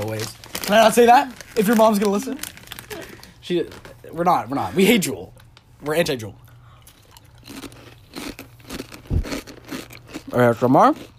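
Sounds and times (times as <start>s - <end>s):
tortilla chips being bitten and chewed: 0.0s - 4.0s, 6.8s - 11.1s
speech: 0.1s - 2.5s, 3.5s - 6.4s, 10.3s - 11.1s.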